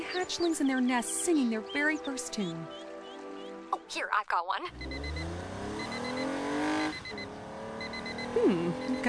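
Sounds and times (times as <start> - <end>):
speech: 0.2 - 2.9, 3.9 - 5.1, 8.4 - 9.0
car engine revving while driving and shifting gear: 4.7 - 9.0.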